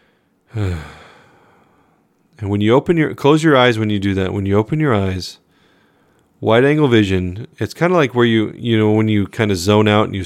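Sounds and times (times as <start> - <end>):
deep breath with a voiced sighing exhale: 0.0 - 2.1
speech: 0.5 - 1.0, 2.4 - 5.4, 6.4 - 10.2.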